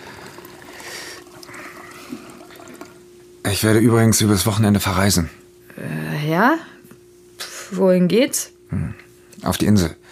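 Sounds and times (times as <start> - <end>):
water pouring into a glass: 0.0 - 3.1
faint low hum: 0.0 - 10.0
speech: 3.5 - 5.4, 6.3 - 6.7, 7.7 - 10.0.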